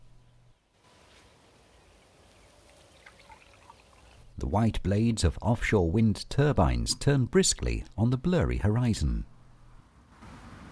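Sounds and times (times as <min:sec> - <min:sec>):
drink pouring from a flask: 0:02.3 - 0:04.3
speech: 0:04.4 - 0:09.3.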